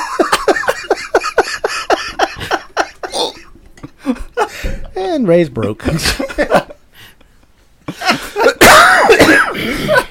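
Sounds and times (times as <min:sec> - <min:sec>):
laughter: 0:00.0 - 0:04.8, 0:05.6 - 0:10.1
person coughing and choking: 0:02.8 - 0:03.6, 0:08.0 - 0:10.1
speech: 0:05.2 - 0:06.6.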